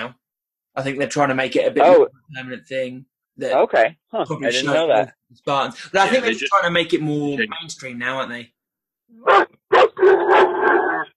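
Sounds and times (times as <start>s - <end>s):
speech: 0.8s - 10.8s
pet dog barking and yowling: 9.2s - 11.1s.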